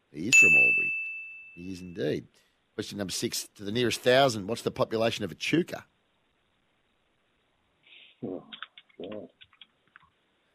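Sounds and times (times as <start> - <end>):
speech: 0.1 - 1.0, 1.6 - 5.9, 8.2 - 9.4
short low hums or coos: 8.2 - 9.4
computer keyboard keys clicking: 8.5 - 10.0.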